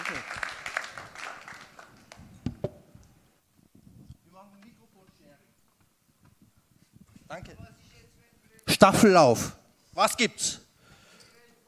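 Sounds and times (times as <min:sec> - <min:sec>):
audience applauding: 0:00.0 - 0:02.4
speech: 0:07.3 - 0:07.8, 0:08.8 - 0:10.6.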